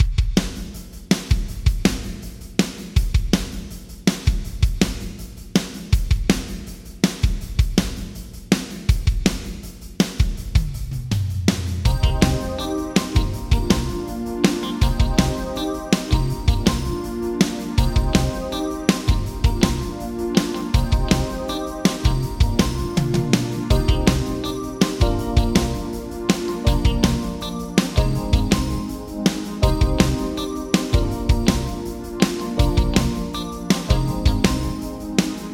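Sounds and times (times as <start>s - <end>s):
drums with short percussion plate reverb: 0.0s - 35.5s.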